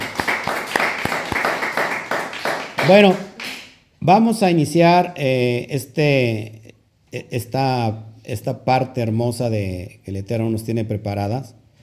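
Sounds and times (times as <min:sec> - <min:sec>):
audience applause at a religious service in praise of God: 0:00.0 - 0:03.6
speech: 0:02.9 - 0:03.3, 0:04.0 - 0:11.6.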